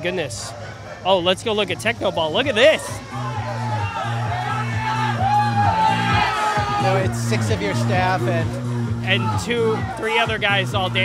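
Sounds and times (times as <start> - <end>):
speech: 0.0 - 3.2, 6.8 - 11.0
crowd of people around a game shouting and whooping: 2.4 - 10.6.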